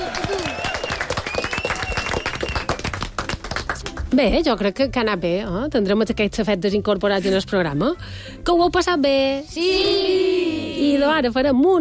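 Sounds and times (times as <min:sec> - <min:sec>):
voices and cheers mixed into applause: 0:00.0 - 0:02.9
dense fast applause from a group: 0:00.0 - 0:04.1
speech: 0:04.1 - 0:11.7.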